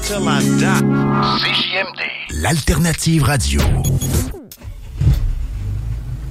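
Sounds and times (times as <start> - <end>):
speech: 0.1 - 4.4
car engine rumbling: 3.6 - 6.2.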